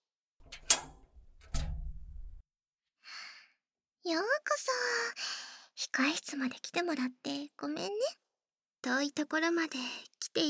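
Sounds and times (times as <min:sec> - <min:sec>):
dressing-room door opening with latch click and rumbling swing: 0:00.4 - 0:02.4
speech: 0:04.0 - 0:08.2, 0:08.8 - 0:10.4.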